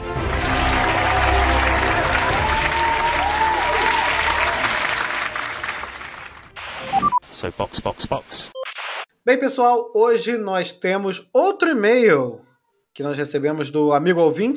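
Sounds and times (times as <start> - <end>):
sizable crowd applauding: 0.0 - 6.7
speech: 7.6 - 8.6, 9.3 - 12.4, 13.0 - 14.5.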